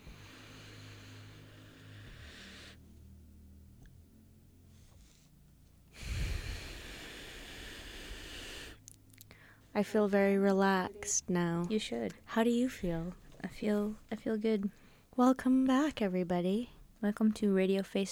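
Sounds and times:
slow deep breathing during a paced breathing exercise: 0.0 - 3.6, 5.9 - 9.8
speech: 9.8 - 18.0.

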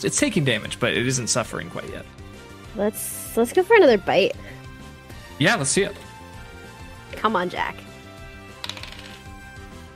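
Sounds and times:
speech: 0.0 - 4.6, 5.4 - 6.0, 7.1 - 7.8
steady musical backdrop: 0.0 - 9.9
dice rolling on a table: 8.6 - 9.4.

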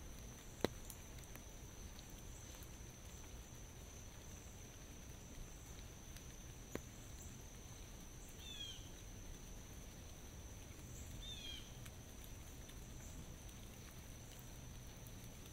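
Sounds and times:
light rain pattering in a forest: 0.0 - 15.5
sharp drips: 0.0 - 15.5.

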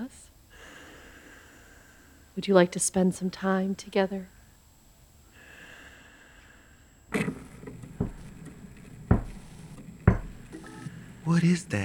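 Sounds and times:
low hiss: 0.0 - 11.8
speech: 2.4 - 4.4, 11.3 - 11.8
Victrola phonograph needle scraping across a record: 7.1 - 11.0.

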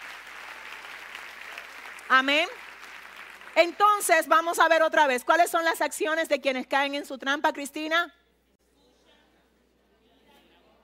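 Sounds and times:
audience applause: 0.0 - 3.8
speech: 2.1 - 2.6, 3.6 - 8.2.

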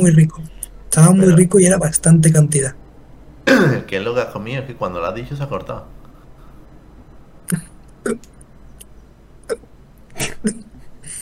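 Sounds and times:
speech: 0.0 - 2.8, 3.5 - 6.0, 7.5 - 8.3, 9.5 - 10.6
hiccups: 7.5 - 8.3, 9.4 - 10.6.

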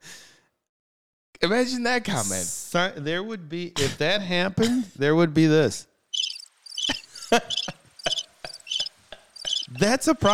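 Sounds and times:
speech: 1.4 - 5.9, 7.3 - 7.6, 9.7 - 10.3
crickets chirping: 6.2 - 9.9.

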